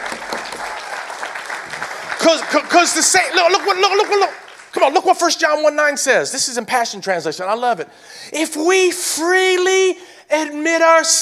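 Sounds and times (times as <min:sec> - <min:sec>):
church audience clapping during a sermon: 0:00.0 - 0:05.3
speech: 0:02.2 - 0:11.2.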